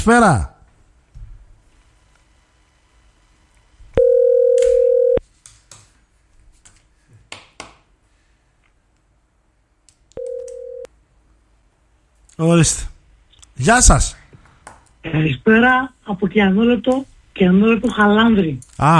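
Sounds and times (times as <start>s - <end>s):
speech: 0.0s - 0.5s, 12.4s - 12.9s, 13.6s - 14.2s, 15.0s - 18.9s
electronic telephone tone of an incoming call: 4.0s - 5.2s, 10.2s - 10.9s.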